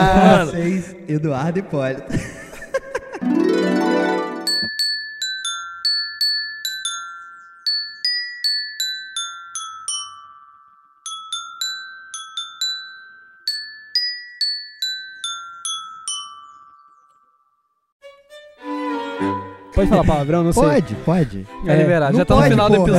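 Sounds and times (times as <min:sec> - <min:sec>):
speech: 0:00.2 - 0:02.3, 0:19.8 - 0:22.9
laughter: 0:02.0 - 0:03.2
folk children's tune picked out on a bright ringing instrument: 0:03.2 - 0:17.7.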